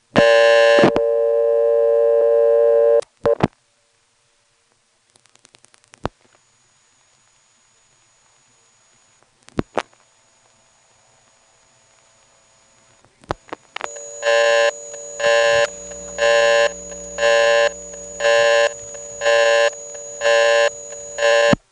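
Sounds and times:
buzzy electrical hum on a phone line: 0.0 - 21.7
loud pulsing phone busy tone: 13.9 - 21.6.

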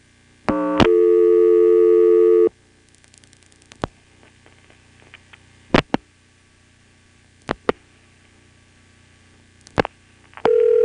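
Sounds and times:
telephone trunk-line buzzing tone after dialing: 0.5 - 2.6, 10.4 - 10.8.

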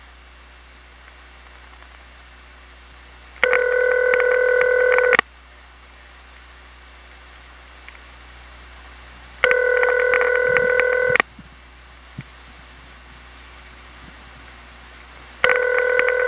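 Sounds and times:
telephone ringback tones on a crossbar 5 test line: 3.4 - 5.2, 9.4 - 11.2, 15.4 - 16.2.

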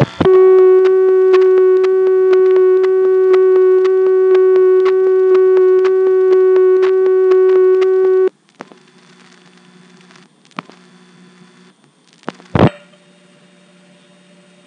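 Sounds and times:
steady loud line tone through a telephone exchange: 0.0 - 8.3
telephone line noise: 0.0 - 12.9.

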